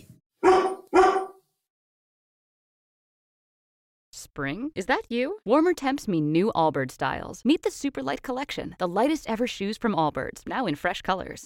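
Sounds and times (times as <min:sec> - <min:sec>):
dog barking: 0:00.4 - 0:01.4
speech: 0:04.2 - 0:11.4.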